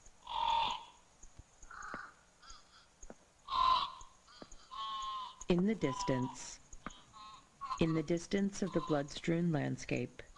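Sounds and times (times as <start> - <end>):
crow cawing: 0.2 - 1.0, 1.7 - 7.9
speech: 5.5 - 6.6, 7.8 - 10.3.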